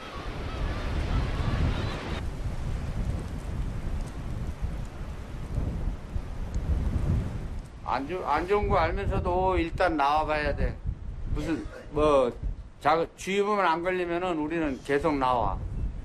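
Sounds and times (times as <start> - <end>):
harbor waves crashing: 0.0 - 2.8, 7.8 - 9.2
strong dawn wind roaring at a harbor: 0.0 - 16.0
speech: 7.9 - 10.8, 11.4 - 15.7.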